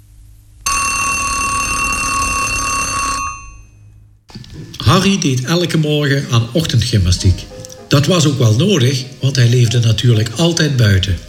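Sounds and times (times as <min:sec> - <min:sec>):
faint hum: 0:00.0 - 0:11.2
metallic alarm-clock bell ringing: 0:00.7 - 0:03.8
speech: 0:04.9 - 0:11.2.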